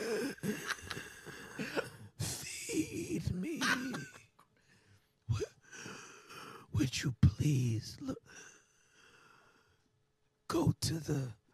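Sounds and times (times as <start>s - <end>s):
person imitating wheezing with breathy gasps and rasping exhalations: 0.0s - 2.4s
laughter: 0.4s - 4.3s
speech: 7.5s - 8.2s, 10.6s - 11.4s.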